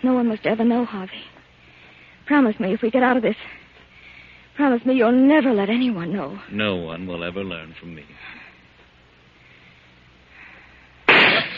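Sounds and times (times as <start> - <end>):
speech: 0.0 - 1.4, 2.3 - 3.6, 4.6 - 8.4
low hum: 0.0 - 11.5
gunshot from a gun: 11.1 - 11.5.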